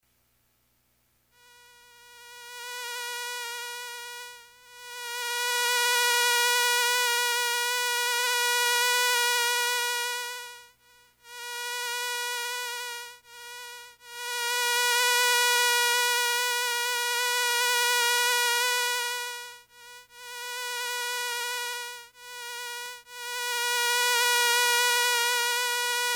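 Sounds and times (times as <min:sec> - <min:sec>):
synthesized mosquito flying sound made with an LFO: 0:01.4 - 0:26.1.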